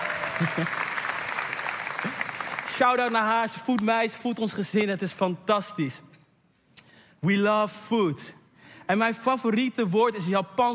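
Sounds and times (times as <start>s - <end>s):
audience applause: 0.0s - 3.2s
speech: 0.4s - 0.9s, 2.8s - 6.1s, 7.2s - 10.7s.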